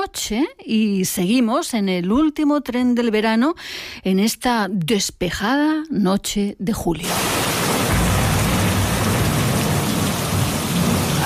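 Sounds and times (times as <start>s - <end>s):
speech: 0.0s - 7.6s
deep rumble of thunder: 7.1s - 11.2s
heavy rain downpour from a sudden thunderstorm: 7.1s - 11.2s.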